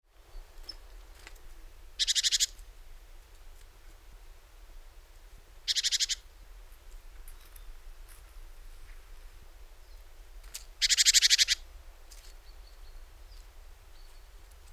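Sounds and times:
background hiss: 0:00.0 - 0:14.7
Great tit Parus major churring: 0:05.7 - 0:06.2.

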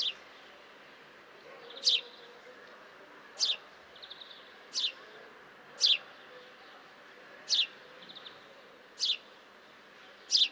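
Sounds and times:
house sparrow Passer domesticus chirping: 0:01.6 - 0:02.2, 0:03.4 - 0:05.0, 0:05.8 - 0:06.1, 0:07.4 - 0:09.4, 0:10.2 - 0:10.5.

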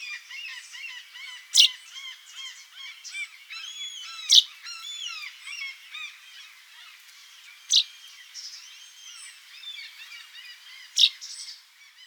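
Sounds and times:
dense continuous chatter of bird calls: 0:00.0 - 0:12.0.

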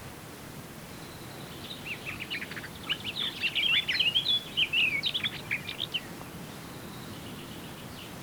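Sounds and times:
background hiss: 0:00.0 - 0:08.2
Eurasian blackcap Sylvia atricapilla singing: 0:01.0 - 0:08.2.

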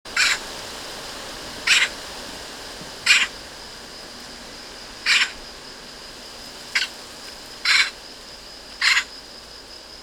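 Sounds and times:
Eurasian magpie Pica pica giving harsh rasping calls: 0:00.2 - 0:00.4, 0:01.7 - 0:01.9, 0:03.1 - 0:03.3, 0:05.1 - 0:05.4, 0:07.6 - 0:07.9, 0:08.8 - 0:09.1.

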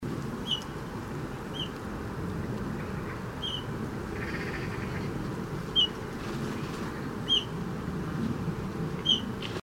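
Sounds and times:
steady low rumble: 0:00.0 - 0:09.6
Eurasian bullfinch Pyrrhula pyrrhula soft piping whistled notes: 0:09.0 - 0:09.3.

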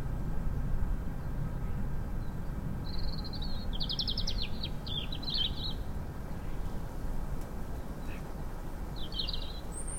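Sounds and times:
low rumbling background noise: 0:00.0 - 0:09.9
European robin Erithacus rubecula song: 0:02.2 - 0:06.7, 0:08.9 - 0:09.9.

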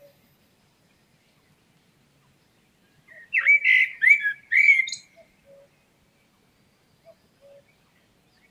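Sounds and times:
common blackbird Turdus merula calling with squeaky slurred notes: 0:02.2 - 0:05.9, 0:06.9 - 0:08.4.

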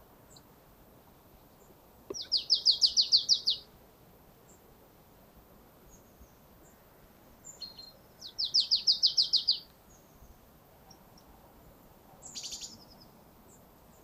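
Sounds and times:
marsh tit Poecile palustris rattling call: 0:02.1 - 0:03.7, 0:07.4 - 0:10.3, 0:12.2 - 0:14.0.

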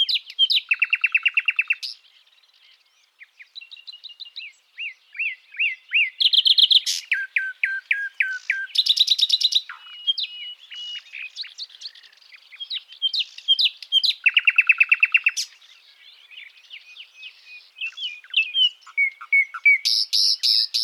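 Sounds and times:
common nightingale Luscinia megarhynchos singing: 0:00.0 - 0:20.8.

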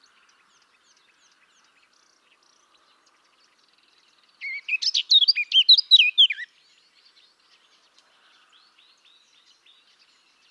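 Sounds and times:
Eurasian blackcap Sylvia atricapilla singing: 0:04.4 - 0:06.5.

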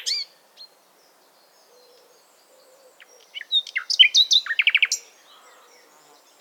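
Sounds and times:
common nightingale Luscinia megarhynchos singing: 0:00.0 - 0:06.3.

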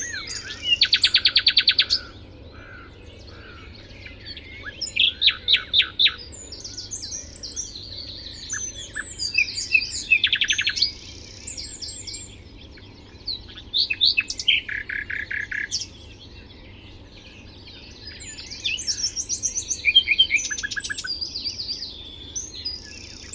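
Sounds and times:
common nightingale Luscinia megarhynchos singing: 0:00.0 - 0:23.3.

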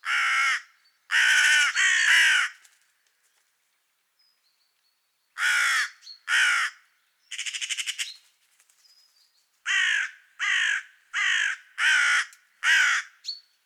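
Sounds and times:
carrion crow Corvus corone cawing hoarsely: 0:00.0 - 0:02.6, 0:05.4 - 0:08.0, 0:09.7 - 0:13.2.

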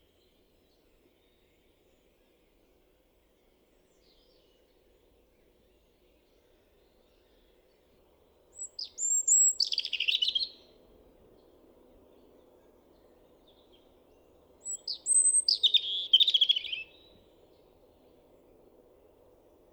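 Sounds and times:
European robin singing, Erithacus rubecula: 0:08.5 - 0:10.7, 0:13.0 - 0:17.7.

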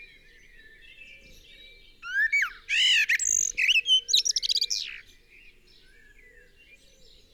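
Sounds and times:
common blackbird Turdus merula singing: 0:02.0 - 0:05.1.

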